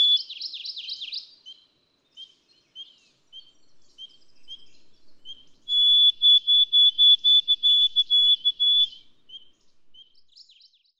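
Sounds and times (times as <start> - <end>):
White-throated sparrow song: 0.0 - 10.9.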